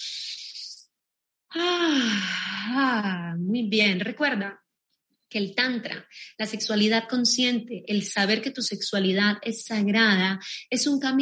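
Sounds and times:
speech: 0:01.5 - 0:04.6, 0:05.3 - 0:11.2
low voiced downward sigh: 0:01.6 - 0:02.8
person taking a deep breath in and out: 0:01.8 - 0:02.8.

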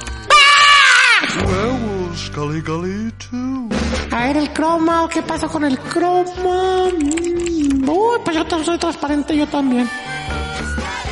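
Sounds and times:
sudden loud high-pitched jump-scare scream: 0:00.3 - 0:01.4
speech: 0:02.4 - 0:10.1.

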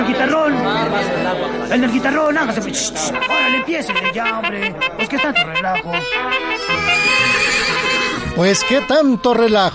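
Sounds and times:
speech: 0:00.1 - 0:07.7, 0:08.4 - 0:09.7
horse neighing: 0:06.6 - 0:08.6.

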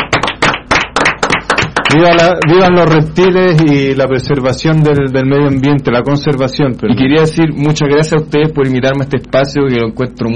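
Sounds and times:
small group applauding a guest: 0:00.0 - 0:03.9
speech: 0:01.9 - 0:10.3.

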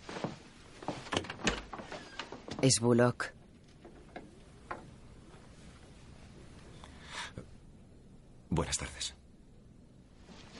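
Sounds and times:
door opening with clicks knocks and a sliding scrape: 0:00.8 - 0:05.5
speech: 0:02.6 - 0:03.4.

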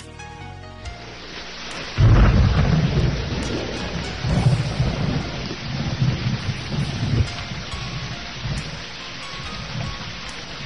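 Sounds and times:
dense pouring rain: 0:00.8 - 0:10.6
deep thunder rumbling in a heavy thunderstorm: 0:01.1 - 0:10.6.

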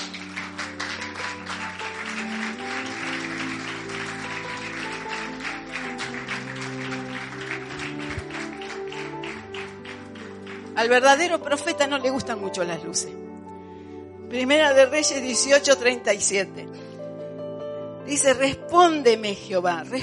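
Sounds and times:
audience applauding: 0:00.0 - 0:11.3
sustained organ or keyboard chords: 0:00.0 - 0:11.8
speech: 0:10.8 - 0:13.3, 0:14.3 - 0:16.9, 0:18.1 - 0:20.0.

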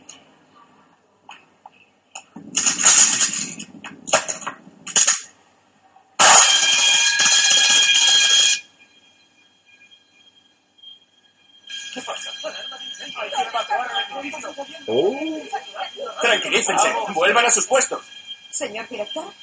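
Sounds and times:
fire alarm ringing in a hospital: 0:02.6 - 0:03.7, 0:06.2 - 0:19.4
speech: 0:16.5 - 0:19.4.

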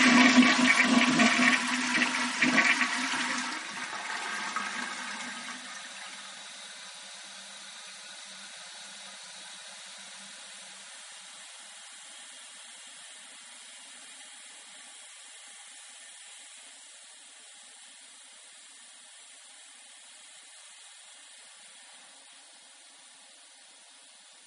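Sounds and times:
toilet flushing: 0:00.0 - 0:10.9
soft steady hiss of toilet tank refilling: 0:00.0 - 0:24.4.

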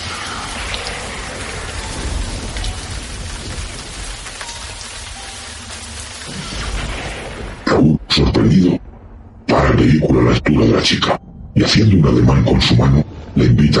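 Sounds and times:
heavy torrential rain pouring down: 0:00.0 - 0:08.9
deep rumbles of thunder: 0:00.0 - 0:12.4
speech: 0:10.8 - 0:13.7.

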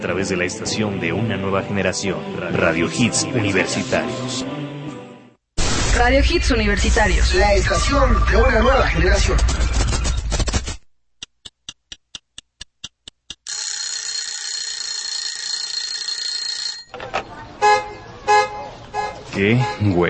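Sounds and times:
speech: 0:00.0 - 0:04.8, 0:06.0 - 0:09.8, 0:19.4 - 0:20.0
steady ticking: 0:11.2 - 0:14.7
busy traffic noise: 0:16.9 - 0:20.0
car horns honking in short bursts: 0:17.6 - 0:20.0.

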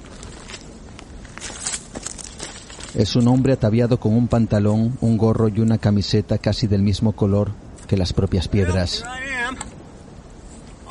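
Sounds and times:
footsteps crunching over rocky gravelly ground: 0:00.0 - 0:03.2
speech: 0:03.0 - 0:09.7.

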